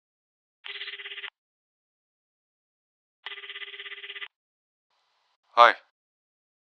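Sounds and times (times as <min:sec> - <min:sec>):
mobile phone ringing: 0:00.6 - 0:01.4, 0:03.2 - 0:04.3
speech: 0:05.6 - 0:05.8.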